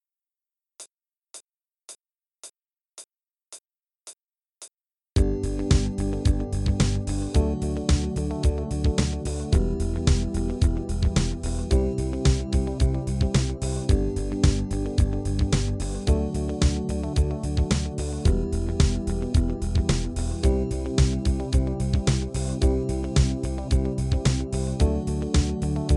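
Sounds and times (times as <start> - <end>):
easy rock music: 5.2 - 25.9.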